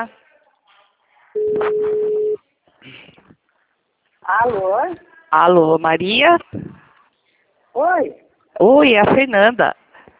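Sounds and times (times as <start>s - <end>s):
speech: 0.0s - 0.2s, 1.4s - 3.1s, 4.2s - 6.8s, 7.8s - 9.8s
telephone line tone during call being placed: 1.4s - 2.4s.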